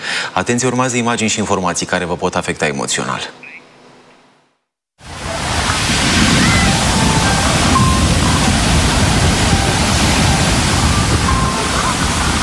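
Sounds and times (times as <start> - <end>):
speech: 0.4 - 3.6
rough sea waves crashing: 5.0 - 12.4.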